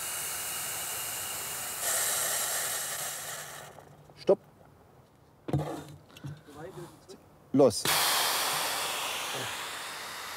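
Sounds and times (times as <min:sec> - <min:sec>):
foam fire extinguisher spraying: 0:00.0 - 0:03.8, 0:07.8 - 0:10.3
speech: 0:04.2 - 0:04.5, 0:07.6 - 0:08.1.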